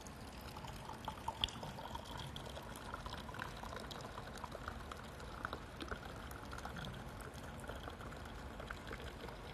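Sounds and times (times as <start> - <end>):
liquor pouring from a bottle into a glass and foaming: 0.0 - 9.5.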